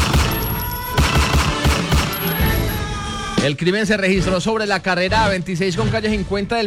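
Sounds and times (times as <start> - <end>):
rapid gunfire from a shooting attack: 0.0 - 2.4
speech: 3.4 - 6.6.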